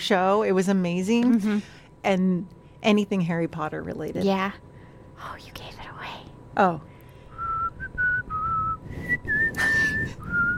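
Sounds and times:
speech: 0.0s - 5.8s, 6.6s - 6.9s
person whistling a short melody: 7.3s - 10.5s.

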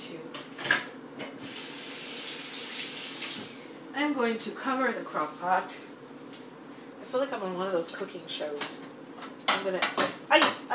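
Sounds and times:
water streaming from a kitchen tap: 1.4s - 3.7s
speech: 4.0s - 5.9s, 7.1s - 9.0s, 9.6s - 10.7s.

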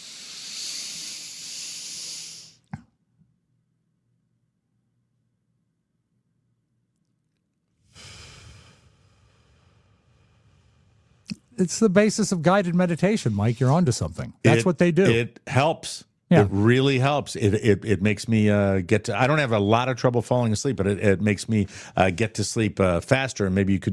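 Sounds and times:
slow controlled hissing breath: 0.0s - 2.7s, 7.8s - 11.5s
speech: 11.6s - 23.9s.

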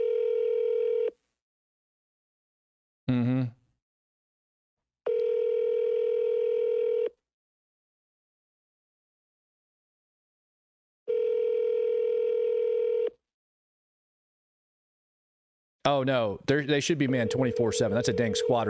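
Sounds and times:
phone call ringback tone to an Air Force squadron: 0.0s - 1.1s, 5.1s - 7.1s, 11.1s - 13.1s, 17.2s - 18.6s
speech: 15.9s - 18.6s.

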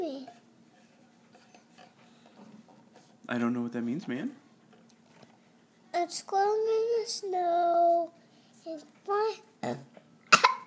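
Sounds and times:
child making short voiced sounds: 0.0s - 0.3s, 6.0s - 9.5s
speech: 3.3s - 4.4s, 6.0s - 9.9s
child burping: 9.6s - 10.6s.

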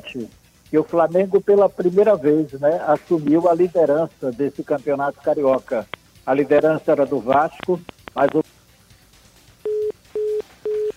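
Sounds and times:
speech: 0.1s - 8.4s
telephone busy tone after a dropped call: 9.6s - 10.9s.

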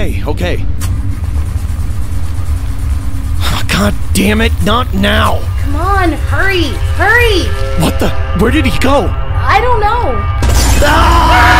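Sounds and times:
speech: 0.1s - 0.7s, 3.8s - 11.5s
car engine running: 0.8s - 7.6s.

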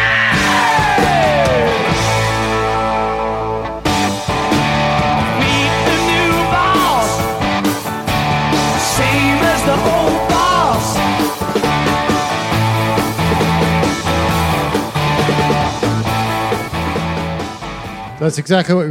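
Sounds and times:
rock singer screaming: 0.0s - 2.7s, 5.2s - 12.1s
loud dense rock band playing: 0.0s - 18.2s
speech: 18.3s - 18.8s.

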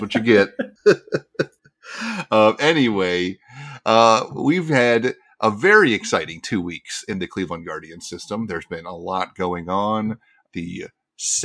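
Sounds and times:
laughter: 0.0s - 7.3s
speech: 0.0s - 11.4s
person coughing: 0.2s - 1.4s.

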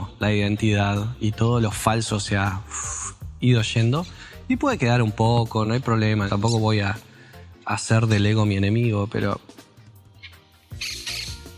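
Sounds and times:
speech: 0.2s - 7.1s, 7.7s - 9.6s
birds squawking: 10.1s - 11.5s.

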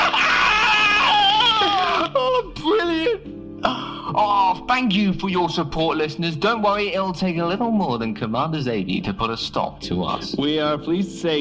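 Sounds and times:
voice imitating being electrocuted with a strained wavering wail: 0.0s - 4.1s
speech: 4.7s - 11.4s.

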